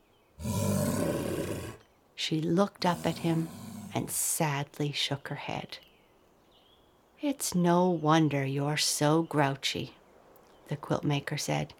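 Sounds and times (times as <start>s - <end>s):
bear roaring: 0.4s - 1.8s, 2.8s - 4.2s
speech: 2.2s - 5.9s, 7.2s - 10.0s, 10.7s - 11.7s.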